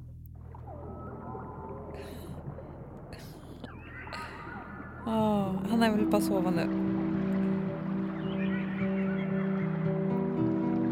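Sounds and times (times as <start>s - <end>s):
steady low hum: 0.0s - 10.8s
whale song with sweeping tonal calls and rising whistles: 0.3s - 10.8s
bright broadband bursts: 0.4s - 10.8s
speech: 5.0s - 6.8s.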